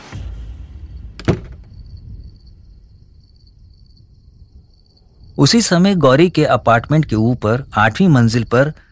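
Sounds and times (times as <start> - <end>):
bedroom door shutting with a thud and rattle: 0.1 - 2.0
faint insect chirping: 0.5 - 8.9
speech: 5.4 - 8.9.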